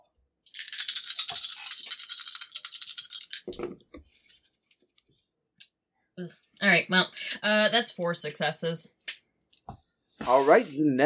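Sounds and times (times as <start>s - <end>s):
dice rolled for an attack in a tabletop role-playing game: 0.5s - 3.8s
speech: 3.5s - 3.9s, 6.2s - 9.0s, 10.3s - 11.0s.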